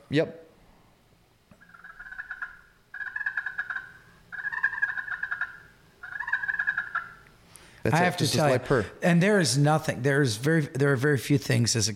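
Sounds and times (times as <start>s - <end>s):
speech: 0.1s - 0.4s, 7.8s - 11.9s
turkey friction call purring with striker dragged across surface: 1.6s - 7.3s.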